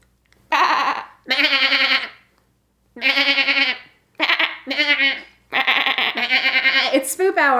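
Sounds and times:
person imitating goat or sheep bleats: 0:00.5 - 0:02.2, 0:03.0 - 0:07.0
speech: 0:07.4 - 0:07.5.

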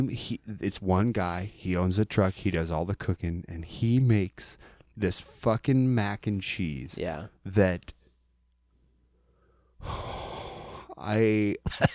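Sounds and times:
speech: 0:00.0 - 0:08.0, 0:09.8 - 0:10.3, 0:11.0 - 0:11.9
deep breath: 0:04.6 - 0:04.9, 0:09.0 - 0:11.0.

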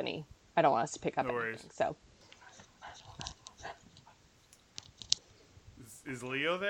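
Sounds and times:
speech: 0:00.0 - 0:02.1, 0:06.1 - 0:06.6
dog mouth sounds: 0:01.2 - 0:04.2
dog panting: 0:02.2 - 0:05.1
faint clicks: 0:02.2 - 0:05.5.

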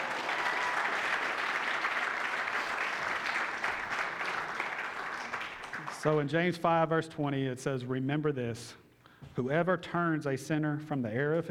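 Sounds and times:
large audience applauding: 0:00.0 - 0:06.3
speech: 0:06.0 - 0:08.8, 0:09.4 - 0:11.4.

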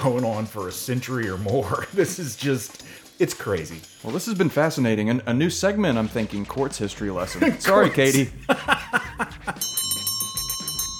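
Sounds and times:
speech: 0:00.0 - 0:09.8
burst of laughter: 0:08.1 - 0:09.6
electric bell ringing: 0:09.6 - 0:10.9.

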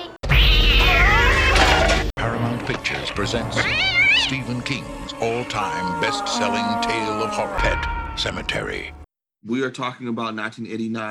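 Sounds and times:
cat yowling in a movie trailer: 0:00.3 - 0:02.0, 0:03.6 - 0:04.4, 0:05.2 - 0:08.9
speech: 0:02.7 - 0:11.0.

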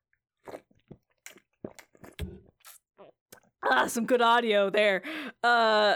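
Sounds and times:
sipping water: 0:00.4 - 0:03.4
gulping swallows of water: 0:00.4 - 0:03.5
small mouth noises: 0:00.4 - 0:03.5
speech: 0:03.7 - 0:05.9.

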